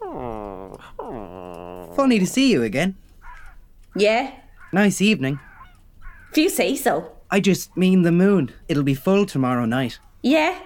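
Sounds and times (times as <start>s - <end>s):
dog whimpering with growly whines: 0.0s - 2.6s
speech: 2.0s - 3.0s, 4.0s - 5.5s, 6.3s - 10.6s.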